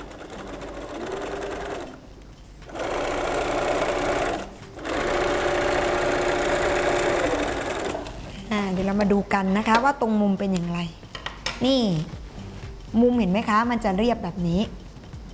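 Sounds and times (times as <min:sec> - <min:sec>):
sewing machine stitching fabric: 0:00.0 - 0:02.0, 0:02.7 - 0:08.2
speech: 0:08.6 - 0:11.0, 0:11.6 - 0:12.2, 0:12.9 - 0:14.8.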